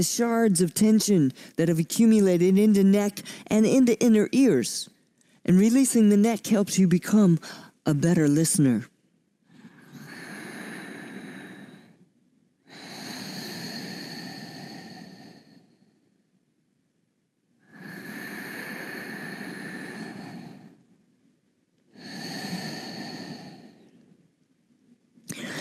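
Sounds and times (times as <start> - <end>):
speech: 0.0 - 8.9
slow deep breathing: 9.4 - 16.4, 17.6 - 21.2, 21.9 - 24.1, 25.3 - 25.6.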